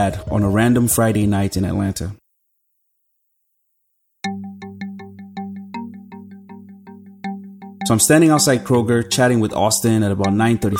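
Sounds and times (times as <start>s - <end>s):
speech: 0.0s - 2.2s, 7.9s - 10.7s
mobile phone ringing with an electronic melody of plucked-sounding tones: 4.2s - 10.7s.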